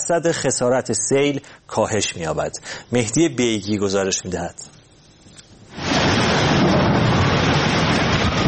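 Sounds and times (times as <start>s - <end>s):
speech: 0.1s - 4.8s
heavy rain pouring: 5.6s - 8.4s
deep rumble of thunder: 5.7s - 8.4s.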